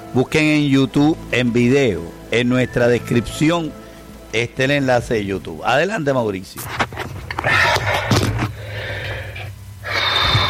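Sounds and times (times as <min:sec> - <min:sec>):
speech: 0:00.1 - 0:07.6
woman breathing heavily with gasps and snorting exhales: 0:07.4 - 0:10.4.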